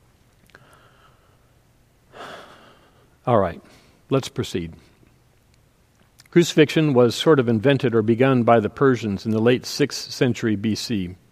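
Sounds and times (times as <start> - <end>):
deep inhale: 0.5 - 4.1
speech: 3.2 - 4.9, 6.3 - 11.2.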